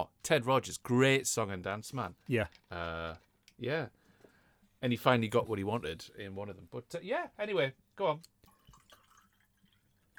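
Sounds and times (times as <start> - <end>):
speech: 0.0 - 4.0, 4.8 - 8.3
gin being poured into a glass: 8.3 - 10.1.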